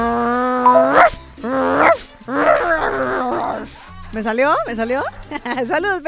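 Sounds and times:
two small dogs yipping and barking: 0.7 - 3.7
speech: 4.2 - 6.0.

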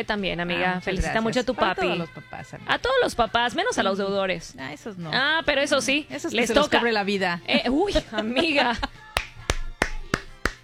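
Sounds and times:
speech: 0.0 - 8.9
hands clapping in applause: 9.1 - 10.6.

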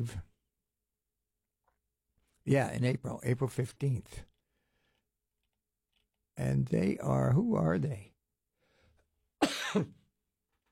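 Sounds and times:
speech: 0.0 - 0.3, 2.4 - 4.3, 6.4 - 8.1, 9.7 - 10.0
person coughing from a tickle in the throat: 9.4 - 10.0.

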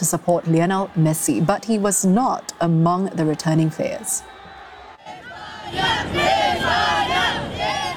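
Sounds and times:
speech: 0.0 - 4.4
large crowd of fans cheering and chanting welcoming a team: 0.0 - 7.9
many fans' voices shouting together in a sustained roar: 4.2 - 7.9.

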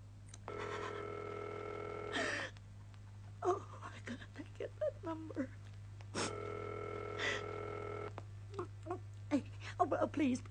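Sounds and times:
low electrical hum: 0.0 - 10.4
buzzing telephone line ring tone: 0.5 - 2.4, 6.2 - 8.1
speech: 5.1 - 5.6, 9.9 - 10.4.

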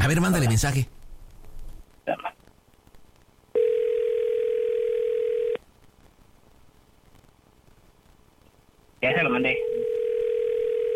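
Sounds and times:
speech: 0.1 - 1.0, 9.1 - 9.7
telephone ringing tone while a call is placed: 3.6 - 5.6, 9.5 - 10.9.

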